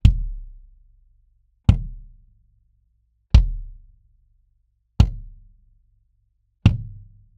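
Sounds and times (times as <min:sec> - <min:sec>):
kick drum mic test: 0:00.0 - 0:00.7, 0:01.6 - 0:02.3, 0:03.3 - 0:04.0, 0:05.0 - 0:05.6, 0:06.6 - 0:07.3.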